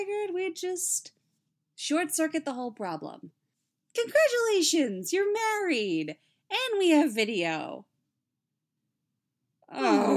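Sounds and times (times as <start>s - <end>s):
speech: 0.0s - 1.2s, 1.8s - 7.9s, 9.7s - 10.1s
two people groaning in unison in exasperation: 9.7s - 10.1s.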